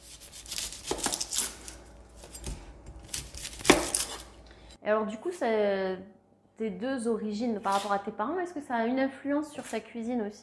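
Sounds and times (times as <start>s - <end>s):
onions being peeled by hand: 0.0s - 4.8s
speech: 4.8s - 10.4s.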